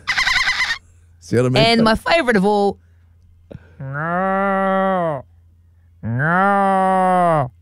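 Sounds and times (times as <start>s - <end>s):
faint low hum: 0.0s - 7.5s
speech: 1.3s - 2.8s, 3.5s - 5.3s, 6.0s - 7.5s
person imitating a cow mooing with their mouth: 3.8s - 5.2s, 6.0s - 7.5s.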